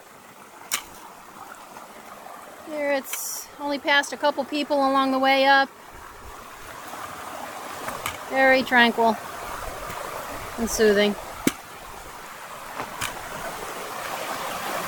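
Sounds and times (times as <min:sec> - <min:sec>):
babbling brook flowing water: 0:00.0 - 0:14.8
speech: 0:02.7 - 0:05.8, 0:08.3 - 0:09.3, 0:10.6 - 0:11.2.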